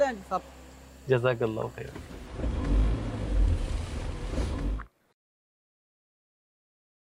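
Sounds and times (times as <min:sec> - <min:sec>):
speech: 0:00.1 - 0:02.6
car engine revving while parking: 0:01.7 - 0:04.9.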